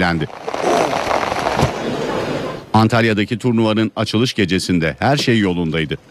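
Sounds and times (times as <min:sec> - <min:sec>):
speech: 0:00.0 - 0:01.0, 0:02.8 - 0:06.0
fireworks crackling and bursting: 0:00.0 - 0:02.5.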